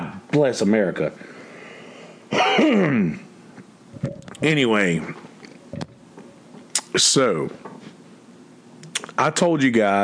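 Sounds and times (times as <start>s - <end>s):
speech: 0.4s - 1.4s, 2.3s - 3.2s, 4.0s - 5.8s, 7.0s - 7.7s, 9.2s - 10.0s
person clearing throat: 2.3s - 3.3s.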